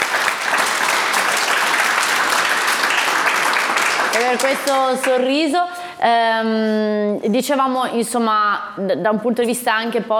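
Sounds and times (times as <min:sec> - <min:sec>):
crowd applauding: 0:00.0 - 0:05.2
speech: 0:04.2 - 0:10.1.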